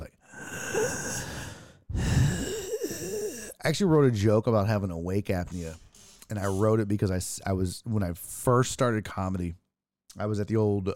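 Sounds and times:
voice imitating heavy labored breathing of a very big person: 0:00.2 - 0:03.6
speech: 0:03.6 - 0:10.9.

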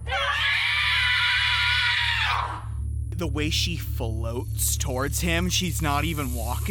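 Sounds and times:
woman shrieking high-pitched and piercing: 0:00.0 - 0:02.7
low hum: 0:00.0 - 0:06.6
speech: 0:03.2 - 0:06.6.

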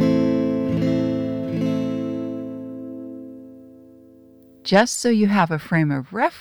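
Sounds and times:
A minor chord strummed on guitar: 0:00.0 - 0:04.4
speech: 0:04.7 - 0:06.3.

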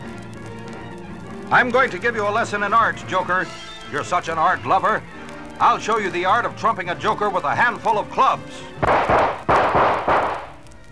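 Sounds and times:
speech: 0:01.5 - 0:09.5
gunshots fired from a gun: 0:08.8 - 0:10.8.

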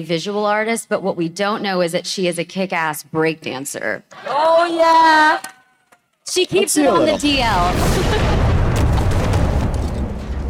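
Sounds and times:
speech: 0:00.0 - 0:05.6, 0:06.3 - 0:08.4
loud deep explosion set off as a diversion: 0:07.2 - 0:10.4.

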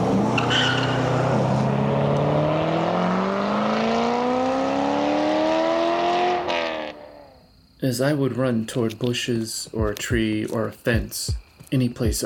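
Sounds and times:
faint tire squeal: 0:00.0 - 0:03.2
car engine roaring as the car accelerates hard: 0:00.0 - 0:07.4
speech: 0:07.8 - 0:12.2.

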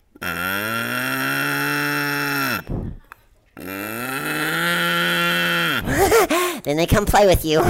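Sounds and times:
person imitating a cow mooing to call cows on a farm: 0:00.0 - 0:02.7, 0:03.6 - 0:05.9
speech: 0:06.6 - 0:07.6.

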